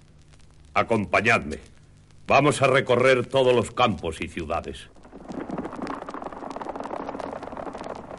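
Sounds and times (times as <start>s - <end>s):
speech: 0.8s - 1.7s, 2.3s - 5.0s
horse hooves clip-clopping: 5.0s - 8.1s.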